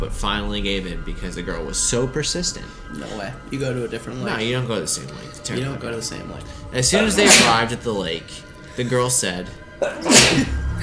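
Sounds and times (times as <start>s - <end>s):
speech: 0.0s - 10.8s
person sneezing: 7.2s - 7.6s, 9.8s - 10.6s.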